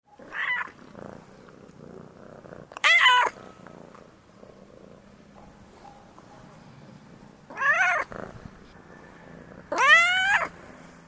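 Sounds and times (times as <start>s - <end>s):
domestic cat purring: 0.2s - 10.2s
domestic cat meowing: 0.3s - 0.7s, 2.8s - 3.4s, 7.5s - 8.1s, 9.7s - 10.5s.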